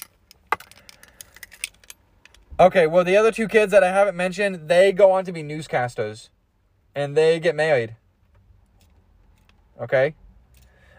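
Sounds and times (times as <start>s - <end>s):
keys jangling: 0.0s - 2.4s
speech: 2.6s - 6.4s, 7.0s - 8.0s, 9.8s - 10.2s.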